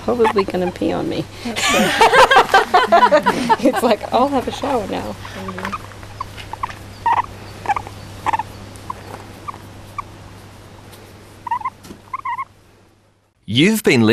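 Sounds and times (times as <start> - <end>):
male flying fox squealing while his belly is scratched: 0.0 - 1.1, 3.8 - 10.4, 11.4 - 12.6
speech: 0.0 - 5.8, 13.5 - 14.1
steady low hum: 0.0 - 14.1
laughter: 1.5 - 4.8.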